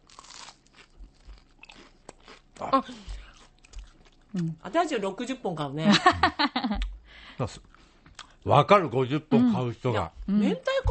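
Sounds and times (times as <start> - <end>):
biting and chewing warmed buttery bread filled with mentaiko: 0.0 - 4.4
speech: 2.6 - 3.1, 4.3 - 7.7, 8.4 - 10.9.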